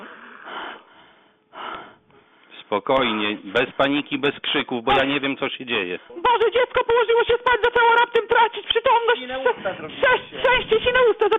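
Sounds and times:
small boy gasping as he starts breathing again during resuscitation: 0.0 - 2.4
speech: 2.7 - 11.3.

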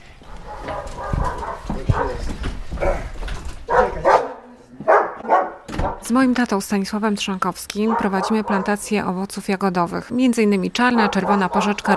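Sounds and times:
several dogs barking and yipping: 0.2 - 6.0, 7.8 - 9.1, 10.8 - 11.9
speech: 6.1 - 11.9.

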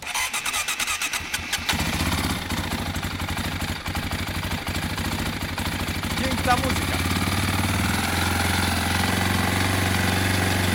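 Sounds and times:
old Honda XL motorcycle engine cranking and idling: 0.0 - 10.7
speech: 6.5 - 7.0.

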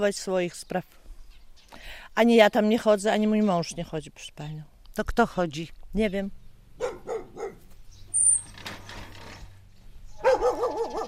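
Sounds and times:
speech: 0.0 - 1.0, 1.7 - 6.4
dog barking: 6.8 - 7.7, 10.2 - 11.0
dog whining high-pitched: 10.2 - 11.0.

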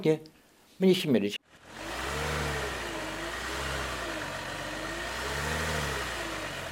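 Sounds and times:
speech: 0.0 - 1.4
off-road vehicle engine revving and straining through mud: 1.4 - 6.7
steady rumbling whir: 1.4 - 6.7.

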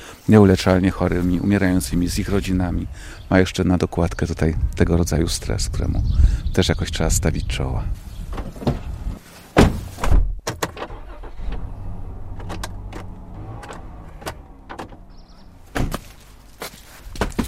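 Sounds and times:
speech: 0.3 - 8.0
door opening with sharp clunks: 8.3 - 8.9, 9.6 - 16.0
loud bumps: 9.6 - 17.4
scattered footsteps of someone walking in: 15.6 - 17.4.

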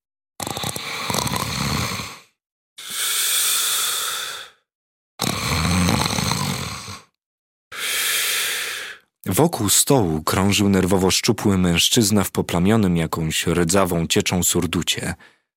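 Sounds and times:
hunched woman snoring in a rocking chair: 0.4 - 4.6, 5.2 - 7.2
speech: 9.3 - 15.4.

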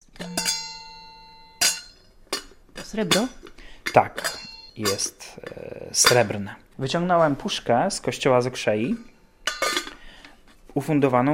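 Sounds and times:
bell clanging outside on a snowy night: 0.1 - 5.3
speech: 2.9 - 9.1, 10.8 - 11.3.

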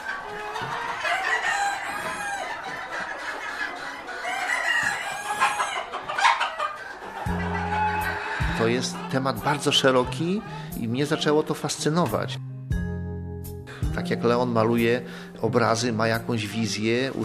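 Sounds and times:
rooster crowing loudly: 0.0 - 3.0, 3.8 - 8.7
Padovana chickens clucking in a flock: 0.0 - 12.2
speech: 8.6 - 12.4, 14.0 - 17.2.

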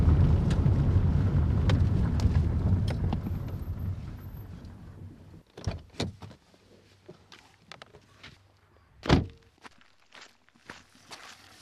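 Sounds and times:
dense low rumbling noise: 0.0 - 5.3.

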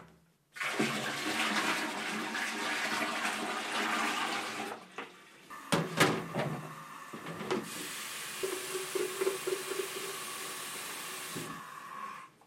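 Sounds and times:
water rushing through pipes during plumbing leak test after a repair: 0.6 - 12.4
steady hiss of running water: 6.6 - 12.3.

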